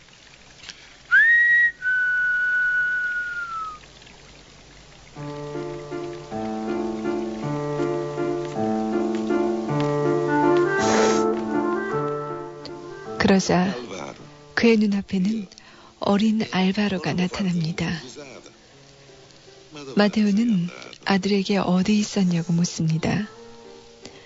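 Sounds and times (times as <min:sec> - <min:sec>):
person whistling: 0:01.1 - 0:03.8, 0:10.7 - 0:11.8
melodic music with repeated tonal notes: 0:05.2 - 0:14.6
speech: 0:13.3 - 0:13.8, 0:14.6 - 0:18.4, 0:19.9 - 0:23.4.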